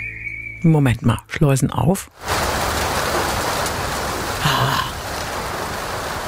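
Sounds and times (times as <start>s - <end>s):
speech: 0.6s - 2.4s
rain pattering on car roof: 2.1s - 6.2s.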